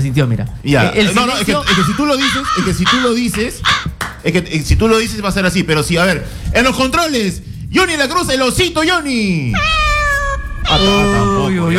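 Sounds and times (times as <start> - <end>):
speech: 0.0 - 9.8, 10.7 - 11.7
person imitating a cat meowing: 9.5 - 11.6.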